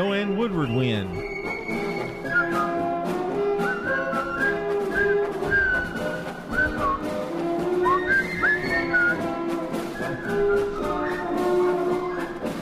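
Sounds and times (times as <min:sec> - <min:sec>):
speech: 0:00.0 - 0:01.8
person whistling a jaunty march tune: 0:00.0 - 0:12.6
steady band-like accompaniment: 0:00.0 - 0:12.6.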